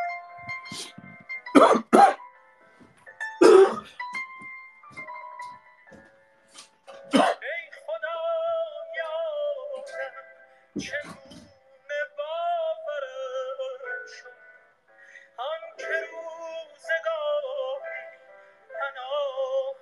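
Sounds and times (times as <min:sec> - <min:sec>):
quiet music: 0:00.0 - 0:19.7
harsh coughing from a throat tickle caused by a bad flu: 0:01.5 - 0:02.2, 0:03.4 - 0:03.9, 0:07.1 - 0:07.4
speech: 0:01.6 - 0:01.8
throat-clearing cough: 0:01.6 - 0:02.2, 0:03.4 - 0:03.9.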